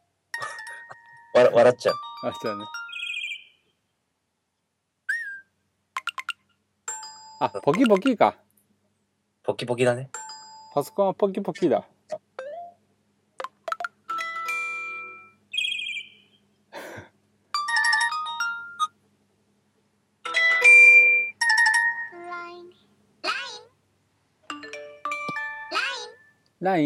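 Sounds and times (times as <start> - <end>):
iPhone ringtone marimba melody: 0.4 - 3.4, 6.0 - 8.2, 10.2 - 10.9, 13.4 - 16.1, 17.6 - 18.9, 20.3 - 22.3, 24.5 - 26.4
speech: 1.4 - 2.8, 7.4 - 8.4, 9.5 - 10.2, 10.8 - 11.9.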